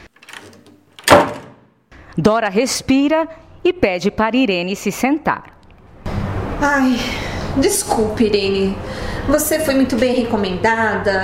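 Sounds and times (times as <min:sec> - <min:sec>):
soft rattle of a door being handled: 0:00.1 - 0:01.6
door slamming shut: 0:00.3 - 0:01.7
speech: 0:02.2 - 0:05.5, 0:06.6 - 0:11.2.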